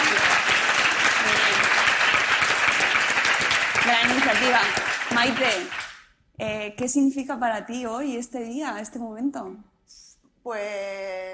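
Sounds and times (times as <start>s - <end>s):
audience applause for a group of autism activists: 0.0s - 6.0s
speech: 4.4s - 5.8s, 6.4s - 11.3s.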